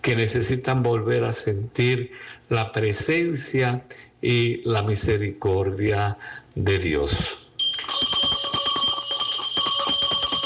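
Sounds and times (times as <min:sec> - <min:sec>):
speech: 0:00.1 - 0:07.4
bell ringing as a call to listen: 0:07.6 - 0:10.4.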